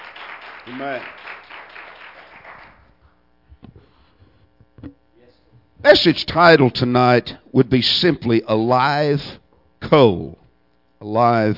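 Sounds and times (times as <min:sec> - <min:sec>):
audience applause in a large room: 0:00.0 - 0:02.9
low electrical hum: 0:00.0 - 0:11.5
speech: 0:00.7 - 0:01.4, 0:05.8 - 0:10.4, 0:11.0 - 0:11.5.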